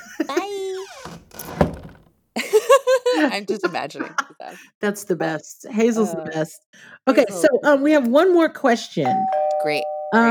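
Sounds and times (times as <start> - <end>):
laughter: 0.0 - 0.8, 2.4 - 4.8
small door swinging shut with a creak and soft thunk: 0.7 - 2.2
speech: 3.2 - 10.2.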